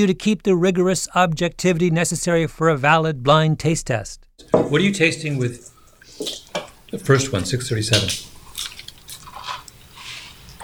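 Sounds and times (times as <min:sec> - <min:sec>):
speech: 0:00.0 - 0:08.3
shatteringly crisp French fry being chewed: 0:08.1 - 0:10.6.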